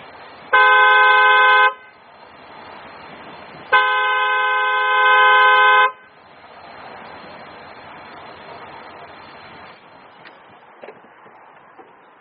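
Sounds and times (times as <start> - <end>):
truck horn honking: 0.5 - 2.0, 3.7 - 6.2.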